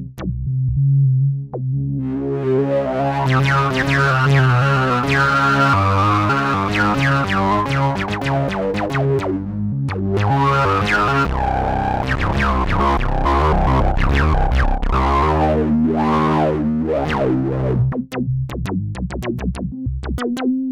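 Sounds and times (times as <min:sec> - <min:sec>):
bass buzzing like a bee: 0:00.2 - 0:20.6.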